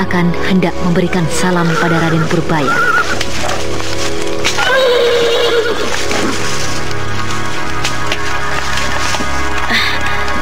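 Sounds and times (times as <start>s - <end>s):
speech: 0.0s - 3.5s
steady dense sound: 0.0s - 10.4s
white horse neighing: 0.9s - 3.6s, 4.6s - 6.3s.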